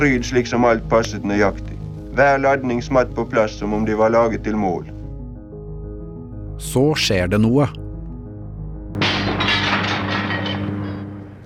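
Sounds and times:
speech: 0.0 - 5.0, 6.6 - 7.8, 8.9 - 9.3
bright crackling debris: 9.0 - 11.4
window pane shattering: 9.0 - 11.4.

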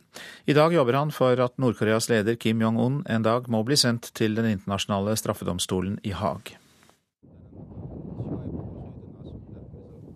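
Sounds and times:
speech: 0.5 - 6.6
cold winter wind blowing through the streets of Geneva: 7.3 - 10.1.

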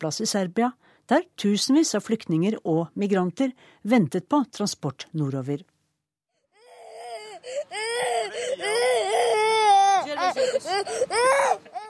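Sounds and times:
speech: 0.0 - 5.7, 10.3 - 11.8
child crying on a packed hot bus at a rest stop in Serbia: 6.6 - 11.8.

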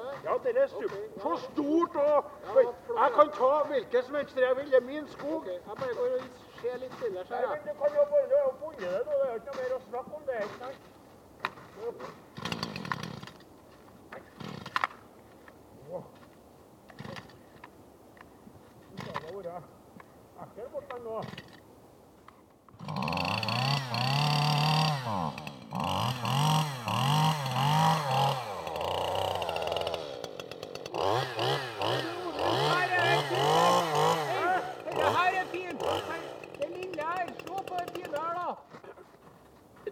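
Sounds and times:
speech: 0.2 - 10.9, 11.8 - 12.2, 20.5 - 21.5
chainsaw revving: 12.4 - 13.4, 14.3 - 14.8, 22.7 - 38.6.

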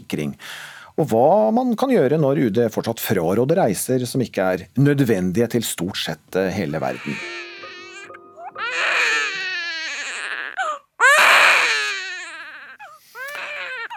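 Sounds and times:
speech: 0.1 - 7.4
newborn baby crying: 6.8 - 13.9.

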